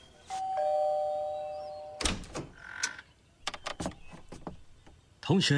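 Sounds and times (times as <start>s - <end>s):
electronic doorbell chiming: 0.3s - 2.1s
speech: 5.3s - 5.5s.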